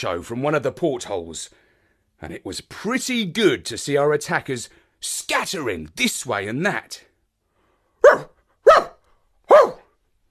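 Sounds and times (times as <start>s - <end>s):
speech: 0.0s - 1.6s, 2.2s - 7.1s, 8.1s - 8.9s
dog barking: 8.0s - 10.0s.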